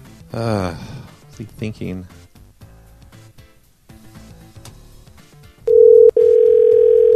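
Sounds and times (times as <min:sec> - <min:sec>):
speech: 0:00.3 - 0:02.3
electronic telephone tone over the line: 0:05.7 - 0:07.1.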